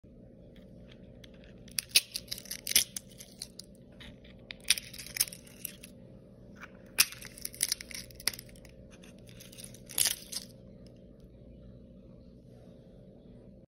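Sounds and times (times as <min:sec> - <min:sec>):
egg shell: 0:00.8 - 0:05.9, 0:06.6 - 0:10.6.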